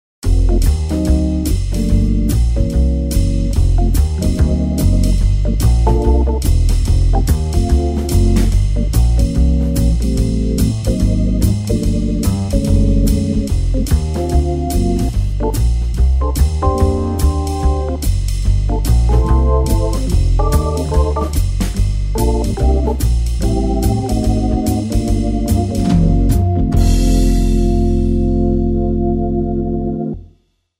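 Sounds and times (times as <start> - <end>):
jazz comping on rotary organ: 0.2 - 30.2.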